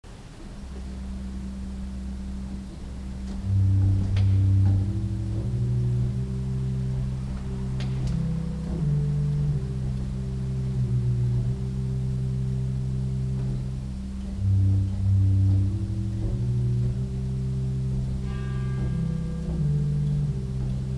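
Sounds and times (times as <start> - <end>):
organ pedal Principal 8 stop: 0.4 - 20.9.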